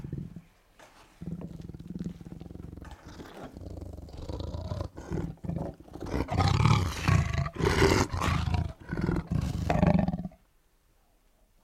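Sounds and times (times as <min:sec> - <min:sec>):
tiger roaring and rumbling: 0:02.4 - 0:10.4.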